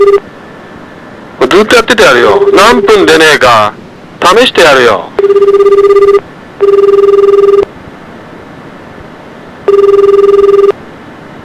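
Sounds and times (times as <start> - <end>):
telephone ringback tone on a call to police emergency number 110: 0.0 - 0.2, 2.2 - 3.2, 5.2 - 7.7, 9.6 - 10.8
speech: 1.4 - 7.7.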